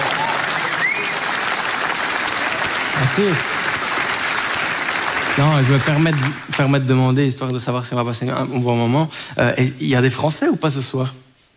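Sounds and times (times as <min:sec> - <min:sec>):
audience applause at a stand-up comedy show: 0:00.0 - 0:06.9
faint whistle from the crowd: 0:00.6 - 0:01.2
speech: 0:03.1 - 0:03.6, 0:05.4 - 0:11.2.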